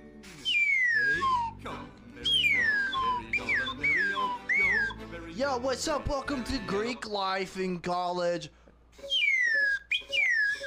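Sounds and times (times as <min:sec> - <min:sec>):
slide whistle playing gliding swoops: 0:00.3 - 0:01.6, 0:02.3 - 0:05.0, 0:09.0 - 0:10.6
speech: 0:05.4 - 0:08.6.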